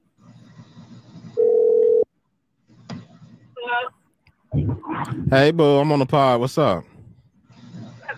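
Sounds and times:
person answering phone: 1.4s - 2.0s
phone line ringback tone: 1.4s - 2.1s
speech: 4.7s - 6.9s.

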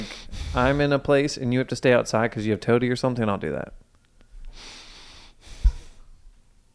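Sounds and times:
person breathing loudly and theatrically: 0.0s - 0.9s, 4.5s - 6.1s
speech: 0.5s - 3.8s.

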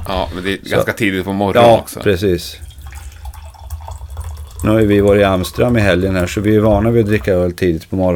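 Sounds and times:
speech: 0.1s - 2.7s, 4.6s - 8.1s
green tea being poured into a cup: 1.6s - 7.4s.

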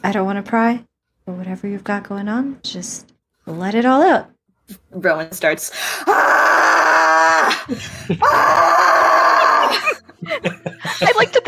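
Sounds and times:
speech: 0.0s - 6.6s, 7.5s - 8.9s, 9.7s - 11.4s
person giving short strained groans and gasps: 6.0s - 10.0s
person screaming loudly and harshly: 6.0s - 10.0s
person breathing heavily: 7.6s - 8.2s
laughter: 7.6s - 11.4s.

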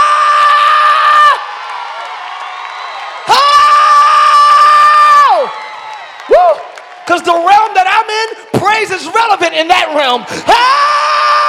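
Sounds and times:
preacher screaming in high-pitched wails: 0.0s - 1.7s, 2.9s - 7.2s, 10.0s - 11.4s
audience cheering: 0.0s - 11.4s
speech: 7.2s - 10.9s.

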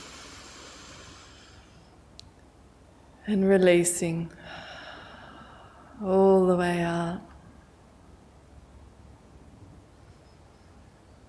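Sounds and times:
long deep inhale through the nose: 0.0s - 2.0s, 4.4s - 6.0s
speech: 3.3s - 4.6s, 6.0s - 7.3s.

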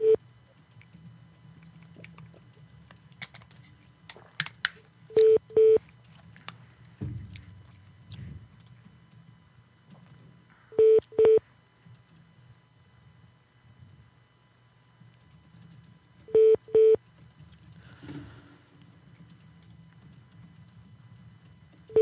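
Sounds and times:
telephone hold tones of short electronic beeps: 0.0s - 0.2s, 5.1s - 5.8s, 10.7s - 11.4s, 16.3s - 17.0s, 21.9s - 22.0s.

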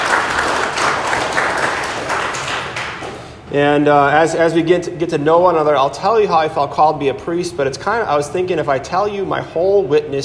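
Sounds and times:
audience applause: 0.0s - 3.3s
speech: 3.5s - 10.2s.

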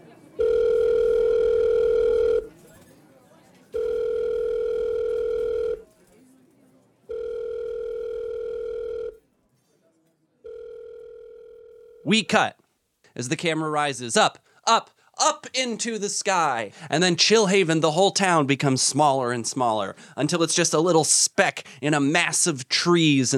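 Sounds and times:
telephone ringback tone heard through a handset: 0.4s - 2.5s, 3.8s - 5.8s, 7.1s - 9.2s, 10.4s - 12.1s
speech: 12.1s - 12.6s, 13.2s - 14.9s, 15.5s - 23.3s.

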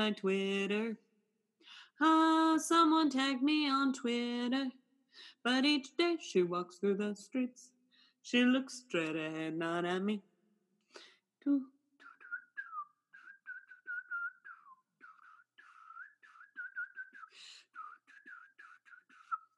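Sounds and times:
speech: 0.0s - 1.1s, 1.7s - 10.3s, 10.9s - 11.7s
person attempting to whistle with breathy wavering tones: 12.0s - 19.5s.

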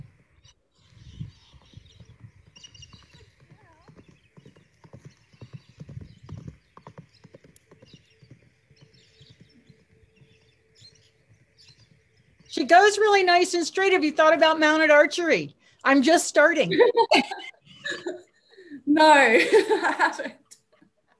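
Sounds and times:
mare's hooves clip-clopping at a walk: 0.0s - 14.9s
speech: 12.5s - 17.5s, 19.0s - 20.4s
laughter: 16.7s - 18.3s, 19.4s - 20.5s.

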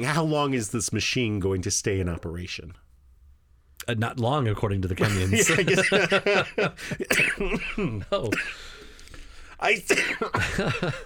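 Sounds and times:
speech: 0.0s - 2.9s, 3.9s - 8.8s, 9.6s - 11.0s
laughter: 5.0s - 8.3s, 10.2s - 11.0s
harsh throaty coughs: 6.9s - 8.8s, 9.9s - 11.0s.

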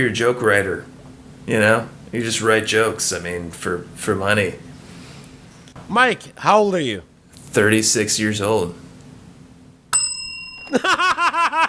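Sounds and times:
speech: 0.0s - 4.7s, 5.9s - 8.8s, 10.7s - 11.6s
bright bell ding rung as a comedic sound effect: 9.9s - 11.0s
bursts of laughter: 10.7s - 11.6s.

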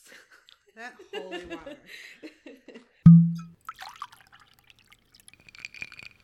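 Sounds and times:
speech: 0.8s - 2.3s
glass or bottle set down with a solid thunk: 3.1s - 3.5s
rye whiskey poured into a glass: 3.1s - 6.2s.

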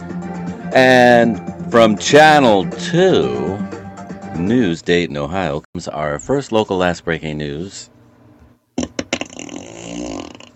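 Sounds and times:
speech: 0.7s - 3.7s, 4.4s - 7.9s
comedic fart sound effect: 8.8s - 10.5s.

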